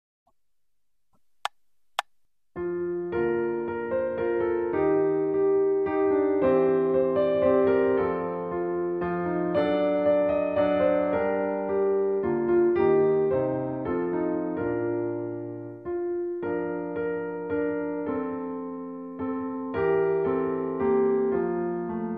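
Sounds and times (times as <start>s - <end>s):
slow Christmas carol piano accompaniment in B flat major: 2.6s - 22.1s.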